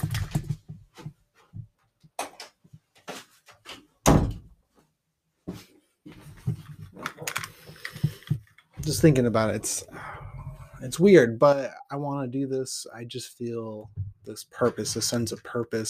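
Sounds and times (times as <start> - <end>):
small knocks and shuffling: 0.0 - 4.0, 4.7 - 9.5, 13.8 - 15.8
door being shut: 4.0 - 4.5
speech: 8.9 - 10.1, 10.8 - 15.8.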